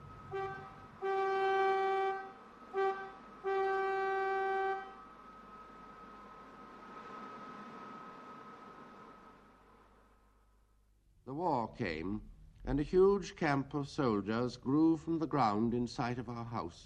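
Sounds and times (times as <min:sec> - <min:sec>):
ship's steel siren horn blasting from the sea: 0:00.0 - 0:05.2
hum and hiss: 0:00.0 - 0:16.8
speech: 0:11.7 - 0:16.8.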